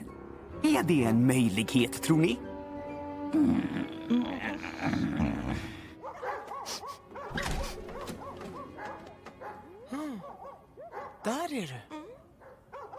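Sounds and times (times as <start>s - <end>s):
speech: 0.6s - 2.5s, 3.3s - 5.8s
several dogs barking and yelping: 5.9s - 11.4s, 12.4s - 12.9s.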